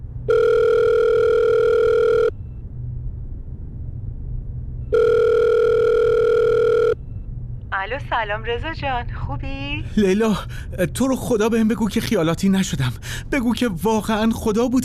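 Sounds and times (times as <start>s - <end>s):
low rumble: 0.0s - 14.8s
electronic ringback tones on a phone line: 0.3s - 2.3s, 4.9s - 7.0s
speech: 8.2s - 14.8s.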